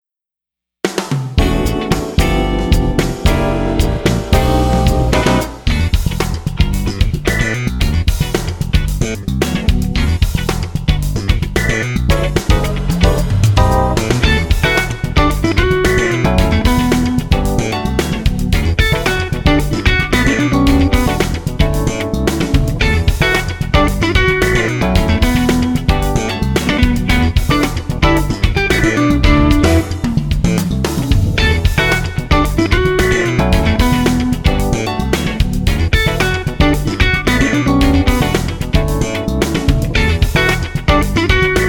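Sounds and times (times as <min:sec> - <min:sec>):
jazz guitarist playing: 0:01.4 - 0:41.6.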